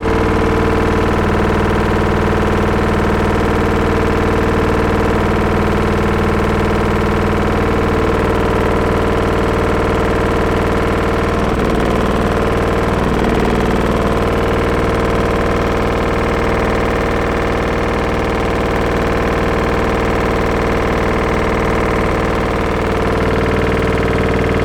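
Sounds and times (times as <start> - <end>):
household washing machine on full spin: 0.0 - 24.6.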